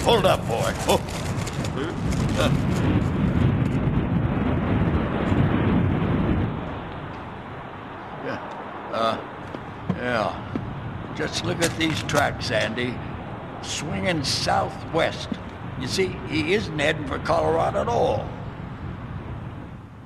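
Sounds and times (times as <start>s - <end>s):
speech: 0.0s - 3.3s, 11.2s - 18.4s
strong wind roaring and gusting: 0.0s - 20.0s
rustling: 0.2s - 3.0s.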